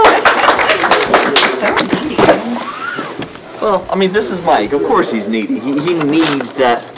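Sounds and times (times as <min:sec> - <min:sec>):
small audience clapping: 0:00.0 - 0:02.2
speech: 0:03.6 - 0:06.9.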